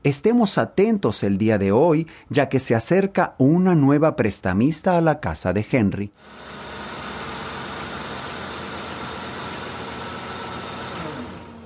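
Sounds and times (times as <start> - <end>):
speech: 0.0 - 6.6
car engine running while arriving and parking: 6.2 - 11.6.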